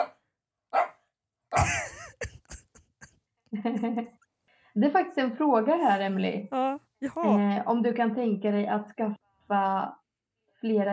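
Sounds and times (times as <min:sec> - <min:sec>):
dog barking: 0:00.0 - 0:01.0
laughter: 0:01.6 - 0:04.1
speech: 0:03.6 - 0:04.2, 0:04.8 - 0:10.0, 0:10.6 - 0:10.9.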